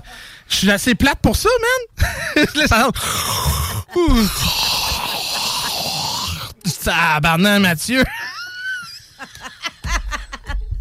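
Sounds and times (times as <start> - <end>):
speech: 0.5 - 3.3, 3.9 - 4.7, 6.8 - 8.2
laughter: 2.0 - 6.6, 8.0 - 10.7
person yawning loudly: 3.0 - 6.6.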